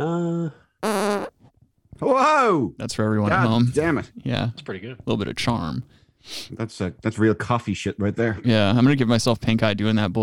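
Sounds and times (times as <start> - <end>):
speech: 0.0 - 0.6, 2.0 - 10.2
loud buzzy fart: 0.8 - 1.4.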